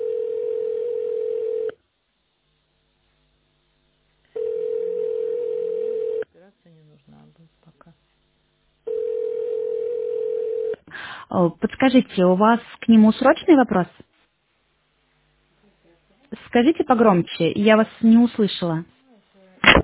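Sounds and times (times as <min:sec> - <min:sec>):
telephone ringback tone while placing a call: 0:00.0 - 0:01.8, 0:04.4 - 0:06.3, 0:08.9 - 0:10.8
speech: 0:11.3 - 0:14.1, 0:16.5 - 0:19.0.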